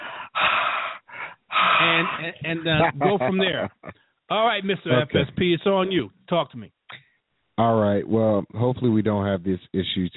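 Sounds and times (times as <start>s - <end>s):
heavy breathing into microphone: 0.0s - 2.4s
laughter: 1.8s - 4.0s
speech: 1.9s - 6.8s, 7.6s - 10.1s.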